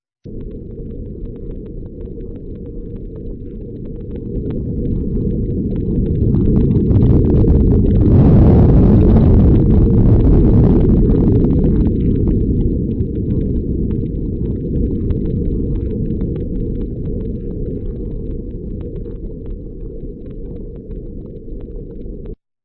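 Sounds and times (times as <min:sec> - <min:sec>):
earthquake rumble in a canyon: 0:00.3 - 0:22.4.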